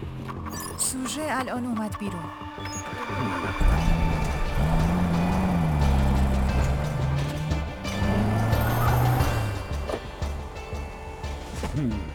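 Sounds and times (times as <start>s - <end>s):
speech: 1.0s - 4.0s
car engine humming as car drives up: 3.4s - 12.1s.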